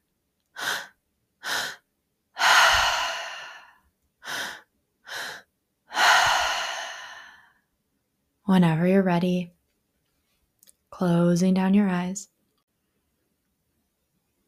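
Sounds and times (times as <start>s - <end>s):
mouth breathing into belly and chest during tri-active breathing: 2.4s - 7.5s
speech: 8.5s - 9.6s, 11.0s - 12.3s.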